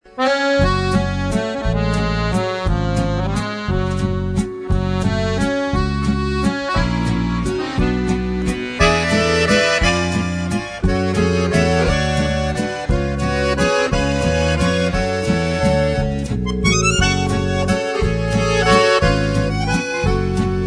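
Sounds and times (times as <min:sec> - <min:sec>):
professional musette accordion: 0:00.0 - 0:20.6.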